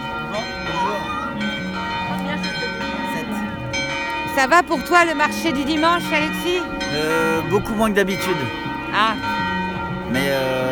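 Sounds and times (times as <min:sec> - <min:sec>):
church bells ringing: 0:00.0 - 0:10.6
speech: 0:04.4 - 0:09.4.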